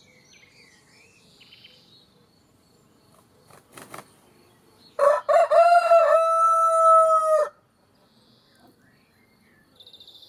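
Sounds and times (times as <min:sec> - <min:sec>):
rooster crowing with long sustained ending: 0:05.0 - 0:07.6.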